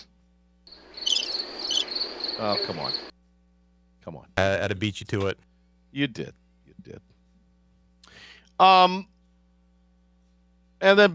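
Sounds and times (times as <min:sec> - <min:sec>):
cricket chirping sound effect: 0:00.7 - 0:03.1
speech: 0:02.4 - 0:03.1, 0:04.0 - 0:07.1, 0:08.2 - 0:09.1, 0:10.8 - 0:11.1.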